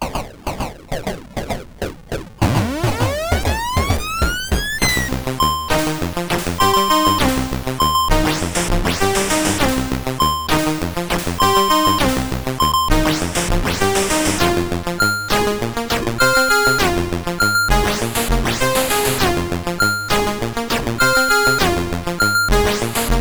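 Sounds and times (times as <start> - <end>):
CSG8580R5 synthesizer: 0.0 - 23.1.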